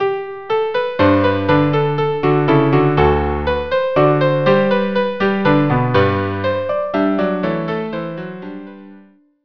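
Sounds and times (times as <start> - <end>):
minuet music: 0.0 - 9.1.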